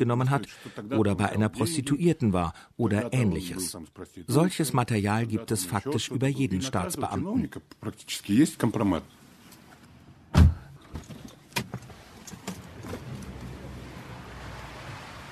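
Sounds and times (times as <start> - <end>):
speech: 0.0 - 9.2
car pulling up and stopping in front of a house in a city centre: 11.0 - 15.3
city street noise: 11.3 - 15.3.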